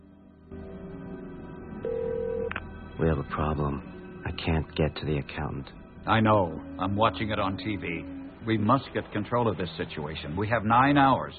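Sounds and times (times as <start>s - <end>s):
mobile phone call dialling tone from a car: 1.8s - 2.6s
speech: 3.0s - 11.3s.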